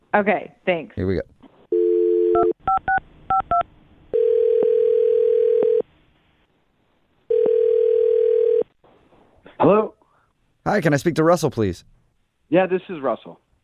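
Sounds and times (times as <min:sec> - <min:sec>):
speech: 0:00.1 - 0:01.3, 0:09.6 - 0:10.0, 0:10.7 - 0:13.6
telephone dial tone: 0:01.7 - 0:05.8, 0:07.3 - 0:08.6.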